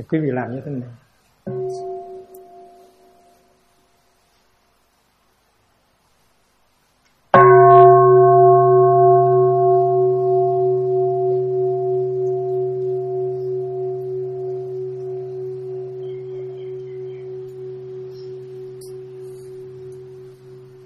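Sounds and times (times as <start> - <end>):
speech: 0.0 - 1.6
Buddhist temple bell struck and ringing: 1.5 - 3.6, 7.4 - 20.8.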